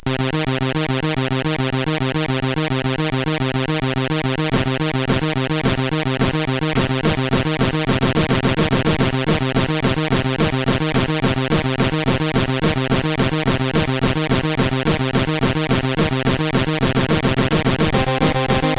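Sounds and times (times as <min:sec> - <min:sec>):
chiptune music on CSG8580R5 sound chip: 0:00.0 - 0:18.7.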